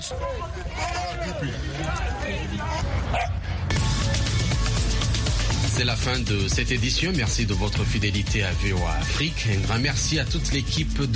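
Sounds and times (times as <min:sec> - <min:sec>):
speech: 0:00.0 - 0:03.8, 0:05.8 - 0:11.1
steady crowd murmur: 0:00.0 - 0:04.5
several dogs barking and yipping outdoors: 0:03.1 - 0:03.4.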